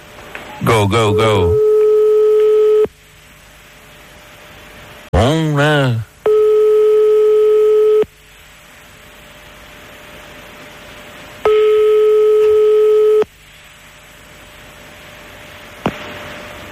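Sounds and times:
speech: 0.6 - 1.7, 5.2 - 6.1
ringback tone of a phone call to a home number: 1.1 - 2.9, 6.3 - 8.0, 11.5 - 13.2
click as the phone line picks up: 1.6 - 2.9, 11.5 - 13.3.

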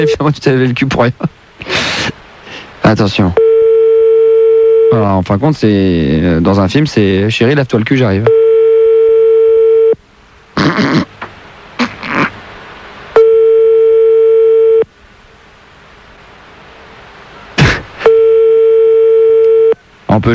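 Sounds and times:
speech: 0.0 - 1.9, 2.8 - 3.5, 4.9 - 8.4, 10.6 - 11.1
telephone ringing tone heard down the line: 3.4 - 5.0, 8.3 - 10.0, 13.2 - 14.9, 18.0 - 19.8.

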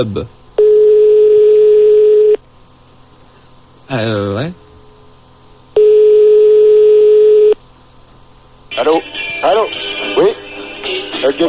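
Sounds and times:
speech: 0.0 - 0.4, 3.9 - 4.6
faint telephone line hum: 0.0 - 11.4
steady telephone line tone while calling a nightclub: 0.6 - 2.4, 5.8 - 7.6.

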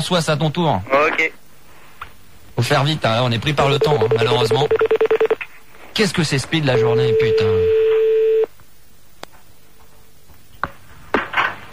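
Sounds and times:
speech: 0.0 - 1.4, 2.6 - 5.0, 6.0 - 7.8
telephone line tone while placing a call: 3.8 - 5.4, 6.8 - 8.5.

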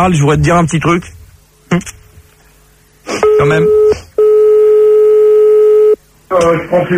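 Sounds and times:
speech: 0.0 - 2.0, 3.1 - 4.1, 6.3 - 6.9
telephone call tone while calling someone back: 3.2 - 6.0.

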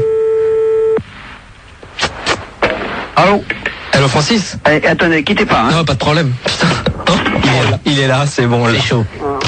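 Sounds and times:
steady telephone tone as a number is called: 0.0 - 1.0
speech: 3.2 - 9.3.

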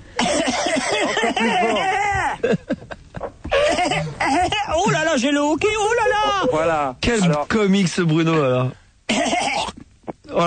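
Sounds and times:
person coughing loudly with sharp hacking bursts: 0.2 - 2.1, 3.4 - 4.7, 9.1 - 9.8
speech: 4.8 - 9.4.

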